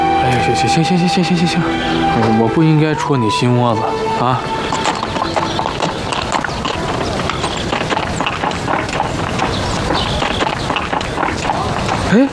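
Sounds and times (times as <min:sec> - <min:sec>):
busy noisy background: 0:00.0 - 0:12.3
speech: 0:00.6 - 0:04.8, 0:12.1 - 0:12.3
donkey hooves clip-clopping: 0:03.8 - 0:12.3.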